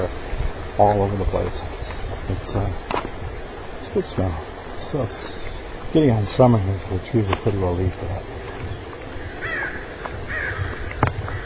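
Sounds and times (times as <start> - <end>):
steady outdoor hum: 0.0 - 11.4
speech: 0.8 - 3.0, 3.9 - 5.3, 5.9 - 8.4
several crows cawing: 8.4 - 11.4.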